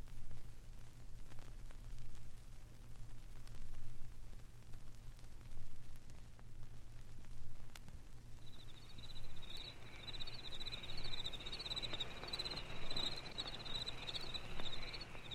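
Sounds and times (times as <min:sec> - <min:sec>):
faint low hum: 0:00.0 - 0:15.3
cicadas buzzing: 0:08.4 - 0:15.3.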